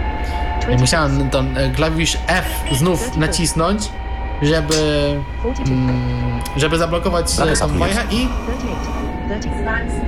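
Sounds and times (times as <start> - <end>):
faint tonal whine: 0.0 - 10.0
train rumbling in motion: 0.0 - 10.0
speech: 0.7 - 10.0
brief higher-pitched warning tone: 4.7 - 9.5.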